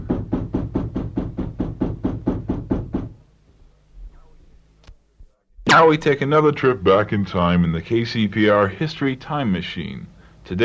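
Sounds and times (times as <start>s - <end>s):
someone pounding hard on a door: 0.0s - 3.2s
speech: 5.7s - 10.6s.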